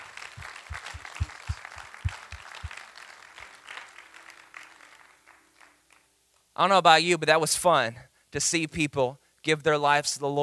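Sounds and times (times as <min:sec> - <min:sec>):
audience applause: 0:00.0 - 0:06.0
speech: 0:06.6 - 0:10.4.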